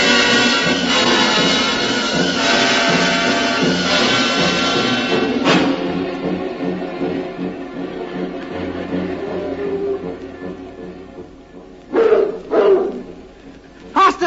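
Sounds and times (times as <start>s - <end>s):
low rumbling noise: 0.2s - 14.2s
dog barking: 11.9s - 13.2s.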